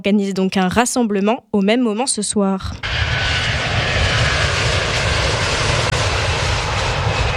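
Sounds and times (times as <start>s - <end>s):
speech: 0.0s - 3.7s
airplane flying overhead: 2.6s - 7.3s.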